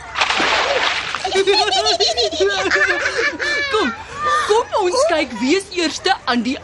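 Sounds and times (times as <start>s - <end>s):
splash of someone jumping into a swimming pool: 0.1s - 1.4s
high giggling voices: 1.2s - 5.7s
speech: 4.8s - 6.6s.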